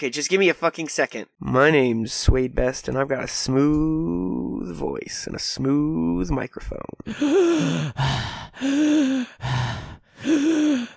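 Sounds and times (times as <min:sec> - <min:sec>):
speech: 0:00.0 - 0:09.8
heavy rough partly voiced panting breaths: 0:07.1 - 0:10.9.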